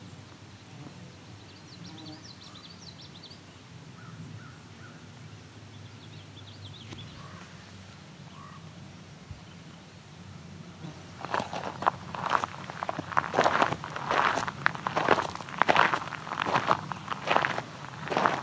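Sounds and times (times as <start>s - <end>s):
steady outdoor noise: 0.0s - 18.4s
indigo bunting singing high paired chirping notes: 1.1s - 18.4s.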